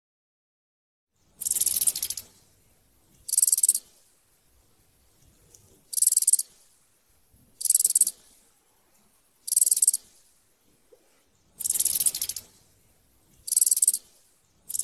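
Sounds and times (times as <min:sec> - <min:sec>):
locust stridulating in short dry hissing buzzes: 0:01.4 - 0:02.4, 0:03.2 - 0:03.9, 0:05.8 - 0:06.6, 0:07.6 - 0:08.2, 0:09.4 - 0:10.1, 0:11.6 - 0:12.6, 0:13.3 - 0:14.1, 0:14.7 - 0:14.8.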